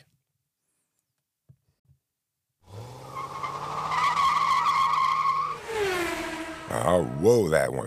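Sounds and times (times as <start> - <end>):
race car tire squeal: 2.7 - 7.1
race car roaring and speeding past: 2.7 - 7.3
speech: 6.9 - 7.8.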